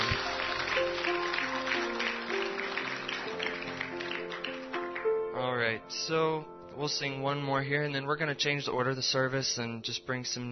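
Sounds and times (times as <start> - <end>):
audience at a worship service clapping in praise: 0.0 - 5.2
speech: 5.8 - 10.5.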